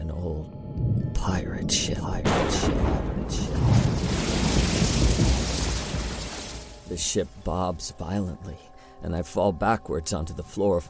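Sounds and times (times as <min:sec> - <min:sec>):
speech: 0:01.2 - 0:04.1, 0:06.9 - 0:10.8
deep rolling rumble of thunder at sea: 0:02.2 - 0:07.2
storm at sea roaring: 0:02.3 - 0:07.1
dense pouring rain at sea: 0:03.4 - 0:07.1.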